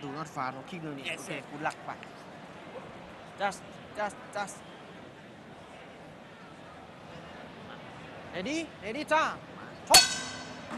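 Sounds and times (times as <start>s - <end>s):
speech: 0.2s - 4.7s, 8.4s - 10.0s
fight bell ringing to start the bout: 9.9s - 10.7s.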